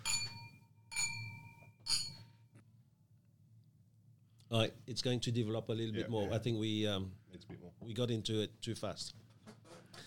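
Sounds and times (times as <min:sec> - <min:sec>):
glasses of old red wine clinking in a toast: 0:00.0 - 0:02.3
speech: 0:04.5 - 0:09.2.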